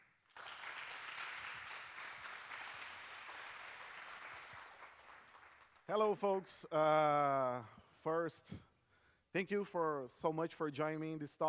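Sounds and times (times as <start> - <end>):
audience applause: 0.0 - 5.9
speech: 5.9 - 8.7, 9.3 - 11.4.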